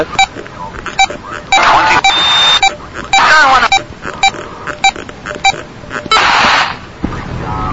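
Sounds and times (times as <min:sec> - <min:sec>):
speech: 0:00.0 - 0:00.3
hissy radio static: 0:00.0 - 0:07.7
short low-pitched beeps over a radio receiver: 0:01.0 - 0:06.2.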